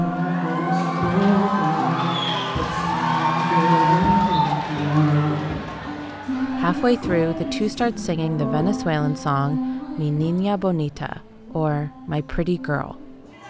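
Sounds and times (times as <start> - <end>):
large concert crowd roaring and cheering: 0.0 - 8.2
speech: 6.8 - 13.0.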